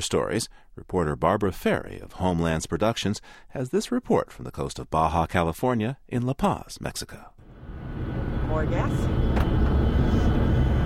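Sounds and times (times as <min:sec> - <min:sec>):
speech: 0:00.0 - 0:07.3, 0:08.5 - 0:09.5
jets taking off and landing at the airport in La Paz, Baja California: 0:07.4 - 0:10.8.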